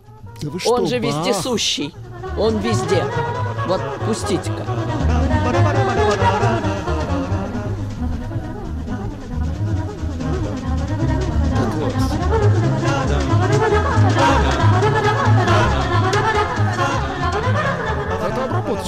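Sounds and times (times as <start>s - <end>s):
modern arrangement of baroque classical music: 0.0s - 18.8s
speech: 0.4s - 4.8s
steady pulsing bass line: 0.4s - 18.8s.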